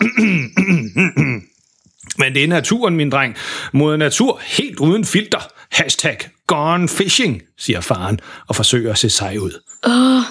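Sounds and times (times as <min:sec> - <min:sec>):
man coughing: 0:00.0 - 0:01.5
man throat clearing: 0:00.0 - 0:01.5
speech: 0:02.3 - 0:10.3
man taking a deep breath: 0:03.4 - 0:03.7, 0:08.2 - 0:08.5.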